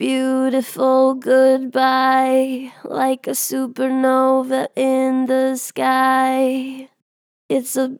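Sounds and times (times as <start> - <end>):
vocals with strong natural vibrato: 0.0 - 7.9.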